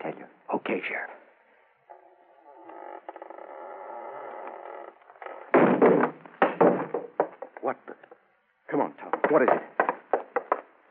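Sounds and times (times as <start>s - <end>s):
speech: 0.7s - 1.1s, 8.7s - 9.7s
unlocked door creaking as it is shoved open: 1.9s - 7.6s
heavy scraping thumps of a door giving way: 5.2s - 7.6s.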